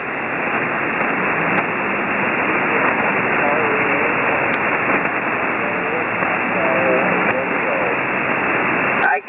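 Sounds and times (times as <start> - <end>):
hissing radio static: 0.0 - 9.2
weak garbled ham radio operator's voice giving a call sign: 2.8 - 8.2, 9.0 - 9.2.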